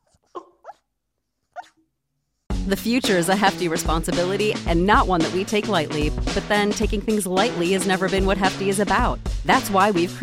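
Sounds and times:
sleeping puppy yipping and woofing: 0:00.0 - 0:01.8
speech: 0:02.6 - 0:10.2.

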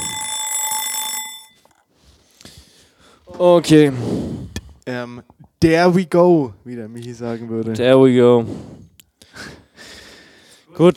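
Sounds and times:
kitchen egg timer ringing with bright metallic trill: 0:00.0 - 0:01.8
speech: 0:03.4 - 0:04.2, 0:04.9 - 0:08.7, 0:10.8 - 0:10.9.

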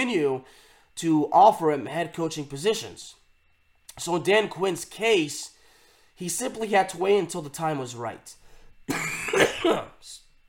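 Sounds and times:
speech: 0:00.0 - 0:03.2, 0:04.0 - 0:05.6, 0:06.2 - 0:10.2
person coughing hoarsely: 0:08.9 - 0:10.1.

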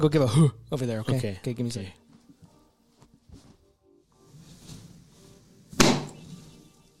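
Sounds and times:
speech: 0:00.0 - 0:02.0
fists thumping against a chest: 0:05.8 - 0:06.2.

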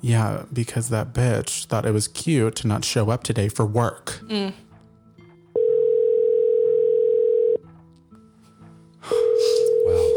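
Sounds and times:
speech: 0:00.0 - 0:04.7
outgoing telephone call ringback tone: 0:05.6 - 0:07.6, 0:09.1 - 0:10.1.

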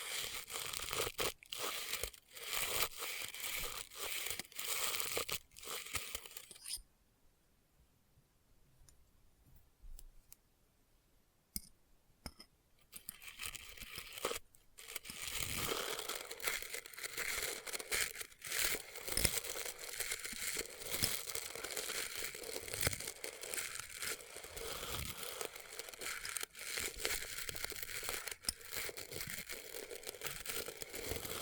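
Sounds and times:
crinkling and crunching in test tubes: 0:00.0 - 0:06.6, 0:13.0 - 0:31.4
scattered clicks and busy crackle: 0:00.0 - 0:06.8, 0:12.8 - 0:31.4.

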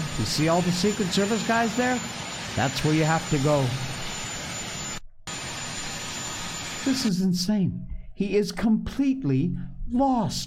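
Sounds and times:
helicopter engine with turbine roar: 0:00.0 - 0:07.4
speech: 0:00.2 - 0:04.3, 0:06.8 - 0:10.4.

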